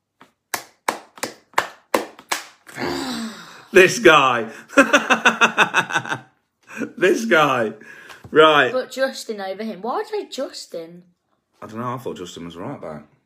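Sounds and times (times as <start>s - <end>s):
hands clapping: 0.0s - 2.8s
speech: 3.7s - 6.3s, 7.0s - 13.1s
person laughing: 4.6s - 7.0s.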